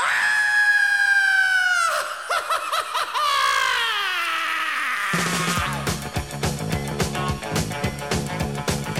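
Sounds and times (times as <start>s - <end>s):
shrill laughing shrieks: 0.0s - 5.8s
person screaming: 0.0s - 5.9s
thumping music beat: 5.2s - 8.9s.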